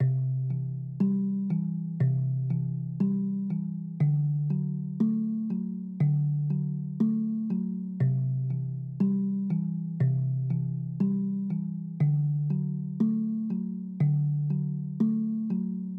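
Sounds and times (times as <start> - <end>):
harp loop: 0.0 - 15.9.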